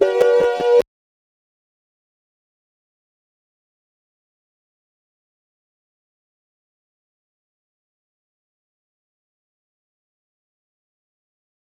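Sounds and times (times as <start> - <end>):
sine wave drums: 0.0 - 0.8.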